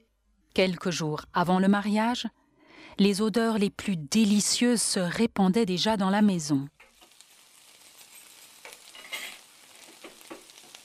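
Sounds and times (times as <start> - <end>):
speech: 0.6 - 6.8
food frying and sizzling in a pan: 6.7 - 10.8
small crackles and pops of frying food: 6.7 - 10.8.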